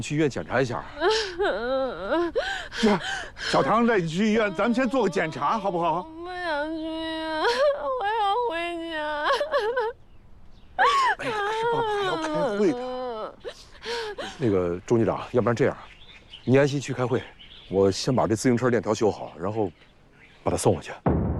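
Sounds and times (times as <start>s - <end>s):
speech: 0.0s - 6.9s, 12.6s - 12.9s, 14.4s - 21.1s
girl crying after falling down: 0.9s - 10.0s, 10.8s - 14.4s
adult talking soothingly: 2.8s - 6.1s, 11.2s - 13.2s, 14.2s - 15.9s, 16.5s - 19.7s.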